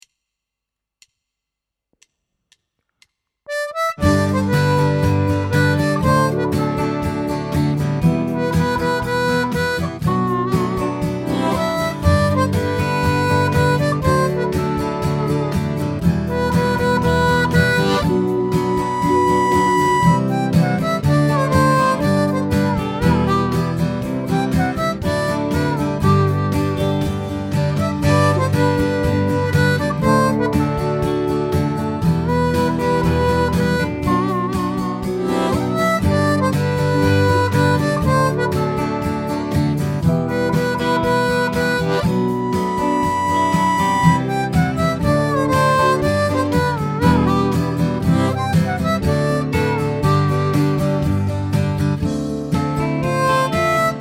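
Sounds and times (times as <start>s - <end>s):
harp: 3.5s - 53.9s.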